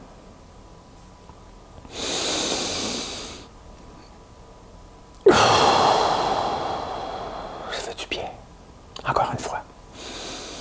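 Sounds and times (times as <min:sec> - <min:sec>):
deep breathing during a guided relaxation pause: 0:01.9 - 0:03.5, 0:05.2 - 0:08.0, 0:09.9 - 0:10.5.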